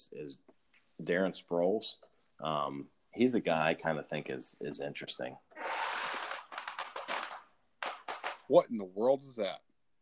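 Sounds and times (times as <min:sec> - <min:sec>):
speech: 0:00.0 - 0:06.0, 0:08.5 - 0:09.7
chair creaking and crackling: 0:05.5 - 0:08.5.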